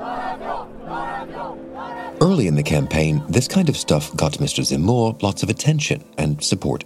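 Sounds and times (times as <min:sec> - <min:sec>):
large rally crowd chanting a slogan: 0:00.0 - 0:04.9
speech: 0:02.2 - 0:06.8.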